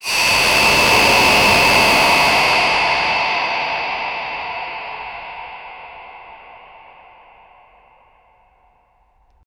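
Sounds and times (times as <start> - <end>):
long cinematic shofar blow: 0.0 - 4.9.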